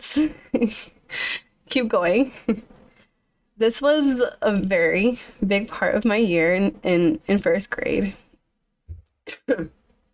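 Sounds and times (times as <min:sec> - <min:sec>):
speech: 0:00.1 - 0:01.0, 0:01.7 - 0:02.8, 0:03.6 - 0:08.2, 0:09.3 - 0:09.8
person coughing with a low throaty catch: 0:09.3 - 0:09.8.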